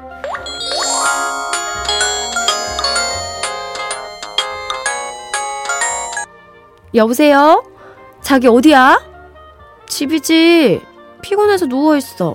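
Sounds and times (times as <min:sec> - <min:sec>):
bright chiming phone ringtone with bell-like notes over soft bass pulse: 0:00.0 - 0:06.3
speech: 0:06.9 - 0:09.1, 0:09.9 - 0:12.3.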